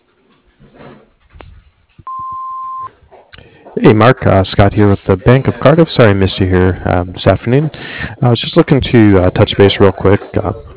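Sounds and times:
low noise: 0.0 - 10.7
construction company's answering machine beep: 2.1 - 2.9
speech: 3.8 - 10.7.

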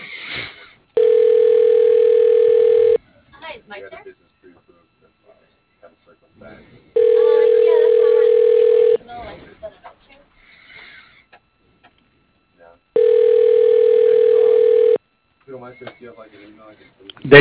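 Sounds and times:
telephone line tone during call transfer: 1.0 - 3.0, 7.0 - 9.0, 13.0 - 15.0.

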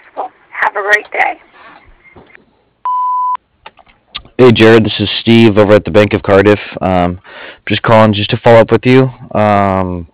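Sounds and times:
speech: 0.2 - 1.5, 4.4 - 10.1
answering machine beep: 2.9 - 3.4.

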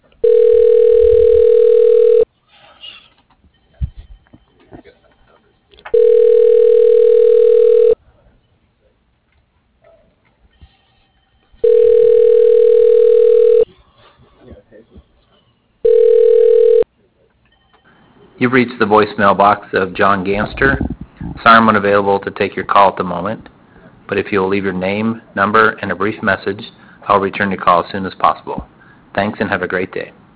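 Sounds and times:
telephone ringback tone while a call is transferred: 0.2 - 2.3, 5.9 - 8.0, 11.1 - 13.7, 15.8 - 16.9
speech: 18.5 - 23.5, 24.1 - 30.2.

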